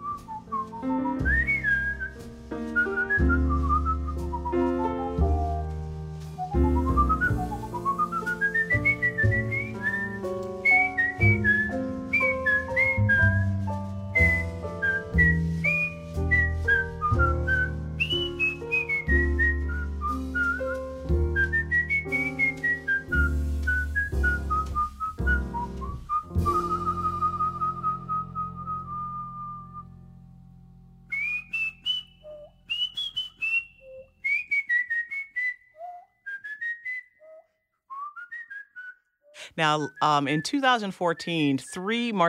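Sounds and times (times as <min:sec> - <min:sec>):
person whistling a flowing melody on a music record: 0:00.0 - 0:30.0, 0:31.1 - 0:42.1
steady accompaniment of bass and chords: 0:00.0 - 0:31.1
speech: 0:39.6 - 0:42.2.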